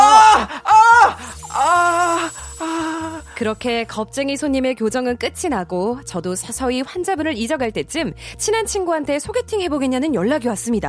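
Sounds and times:
voice imitating a patient's pained moaning during dental scaling: 0:00.0 - 0:03.3
speech: 0:03.4 - 0:10.8.

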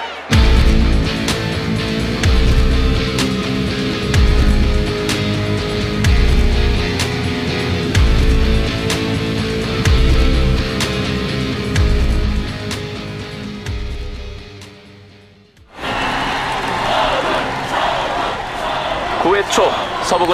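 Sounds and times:
stadium crowd cheering at a baseball game: 0:00.0 - 0:04.2, 0:15.7 - 0:20.3
steady music: 0:00.0 - 0:20.3
speech: 0:20.1 - 0:20.3.

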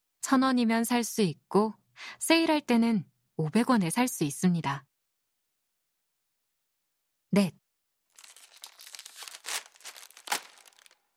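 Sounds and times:
speech: 0:00.3 - 0:04.9, 0:07.3 - 0:07.6
thin plastic film peeled off a tofu package: 0:08.1 - 0:11.1.

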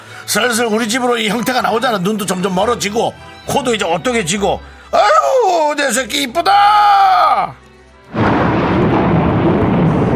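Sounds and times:
speech: 0:00.3 - 0:07.6
thunder crack and rumble sound effect: 0:08.1 - 0:10.1.

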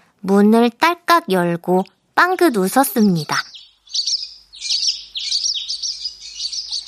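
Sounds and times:
speech: 0:00.2 - 0:03.5
skylark singing high in the sky: 0:02.8 - 0:06.8.

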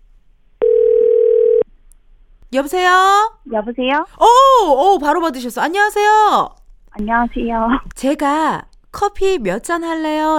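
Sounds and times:
telephone ringing tone while placing a call: 0:00.6 - 0:01.6
speech: 0:02.5 - 0:10.3.

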